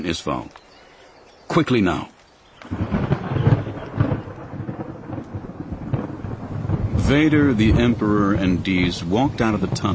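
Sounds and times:
speech: 0:00.0 - 0:00.6, 0:01.5 - 0:02.9, 0:07.1 - 0:09.9
heavy rain: 0:01.0 - 0:09.9
low thunder rumbling: 0:02.6 - 0:09.9.

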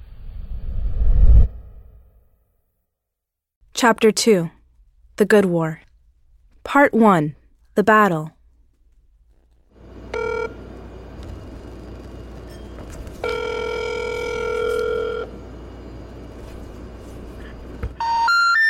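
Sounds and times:
speech: 0:03.8 - 0:04.6, 0:05.2 - 0:05.9, 0:06.6 - 0:08.4
telephone tones from a call to a disconnected number: 0:09.8 - 0:16.6, 0:17.4 - 0:18.6.

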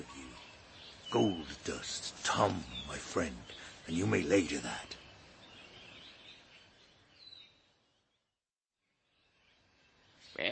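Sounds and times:
bird calling: 0:00.0 - 0:07.5
speech: 0:01.1 - 0:05.0.

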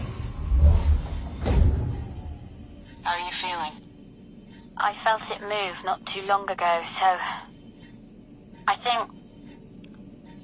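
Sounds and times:
ship's inner door opening with low mechanical rumble: 0:00.0 - 0:03.0
speech: 0:04.8 - 0:07.5, 0:08.7 - 0:09.2.

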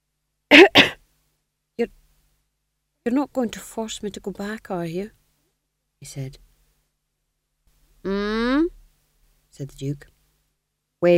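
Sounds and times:
voice acting out a tax gatherer coughing: 0:00.5 - 0:01.0
speech: 0:01.8 - 0:02.0, 0:03.0 - 0:05.2, 0:06.0 - 0:06.5, 0:09.6 - 0:10.1.

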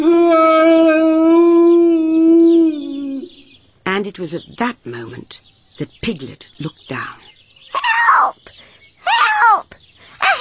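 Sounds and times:
loud mournful roaring howl: 0:00.0 - 0:03.3
speech: 0:04.1 - 0:08.6.

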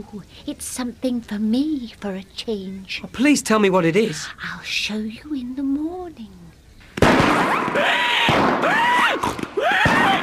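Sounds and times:
speech: 0:00.0 - 0:06.4, 0:07.3 - 0:10.2
fireworks bursting at a fair: 0:06.9 - 0:10.2.

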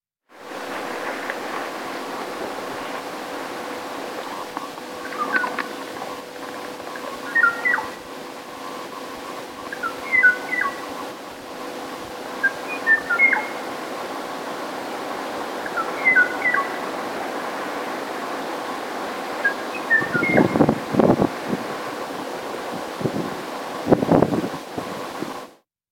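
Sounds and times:
steady hiss: 0:00.3 - 0:25.6
extinct Kauai o'o bird two-note whistles: 0:05.0 - 0:05.6, 0:07.0 - 0:08.0, 0:09.7 - 0:11.0, 0:12.4 - 0:13.6, 0:15.8 - 0:16.8, 0:19.4 - 0:20.6.

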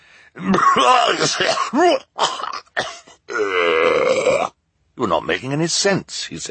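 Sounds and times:
man coughing: 0:00.4 - 0:03.4
speech: 0:00.4 - 0:04.4, 0:05.0 - 0:06.4
man clearing throat: 0:00.4 - 0:04.5.

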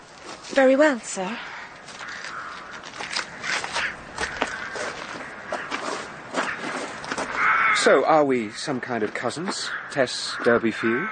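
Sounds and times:
footsteps of two people walking: 0:00.0 - 0:07.9, 0:08.8 - 0:10.8
speech: 0:00.5 - 0:01.5, 0:07.8 - 0:11.0.

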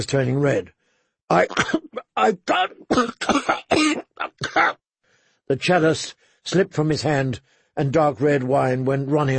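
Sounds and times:
speech: 0:00.0 - 0:04.8, 0:05.5 - 0:09.3
person coughing: 0:01.4 - 0:04.8.

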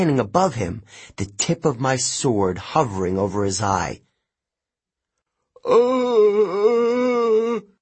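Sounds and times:
speech: 0:00.0 - 0:04.1, 0:05.6 - 0:07.7
man moaning as a dazed Cyclops: 0:05.6 - 0:07.8.

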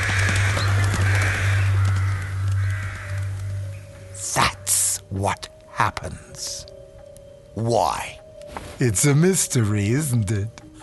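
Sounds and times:
rook cawing harshly: 0:00.0 - 0:04.6
speech: 0:05.2 - 0:06.7, 0:07.6 - 0:08.2, 0:08.8 - 0:10.6.

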